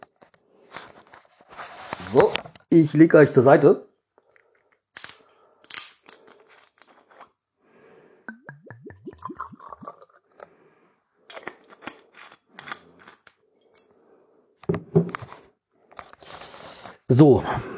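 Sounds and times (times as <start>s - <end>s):
speech: 2.1s - 3.9s, 17.2s - 17.7s
Aalborg Tafel liquor glugging from a bottle into a glass: 8.3s - 10.5s.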